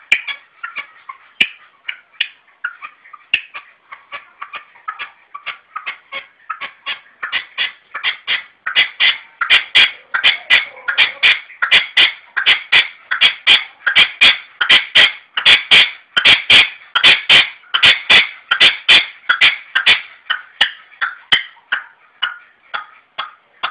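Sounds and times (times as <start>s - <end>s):
red-legged partridge grating rasping call: 0.0s - 23.6s.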